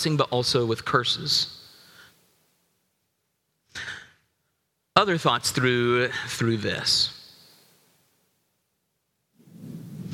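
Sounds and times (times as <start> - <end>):
speech: 0.0 - 1.6, 5.0 - 7.2
soft hiss: 0.0 - 10.1.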